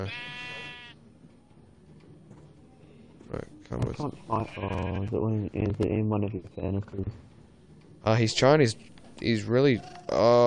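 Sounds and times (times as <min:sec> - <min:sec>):
speech: 0:00.0 - 0:00.5, 0:03.3 - 0:07.3, 0:08.0 - 0:10.4
video game sheep bleating: 0:00.0 - 0:01.0, 0:04.3 - 0:05.2.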